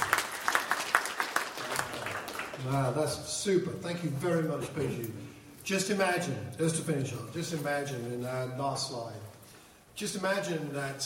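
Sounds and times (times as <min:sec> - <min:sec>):
faint applause from a small audience at the end of a talk: 0:00.0 - 0:02.8
speech: 0:02.6 - 0:09.3, 0:10.0 - 0:11.0.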